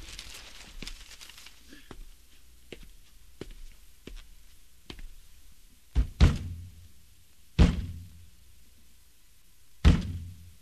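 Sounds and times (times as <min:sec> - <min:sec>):
hand thumping the side of a radio cabinet: 0:06.0 - 0:06.8, 0:07.6 - 0:08.1, 0:09.8 - 0:10.4.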